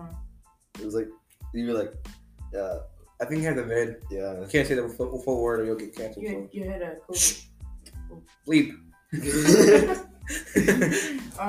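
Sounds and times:
speech: 0.9 - 7.5, 8.1 - 11.4
person doing a mock cough: 9.2 - 11.3
person chuckling: 9.2 - 11.4.

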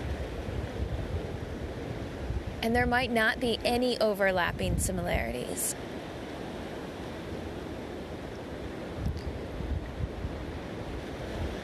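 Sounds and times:
wind buffeting: 0.0 - 5.7, 8.9 - 11.6
ocean surf rolling in and out: 0.0 - 11.6
speech: 2.6 - 6.0.

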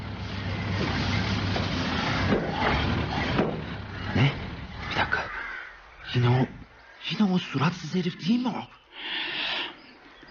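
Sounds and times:
car engine approaching: 0.0 - 6.9
road noise: 0.0 - 10.3
speech: 6.2 - 6.6, 7.2 - 9.2.

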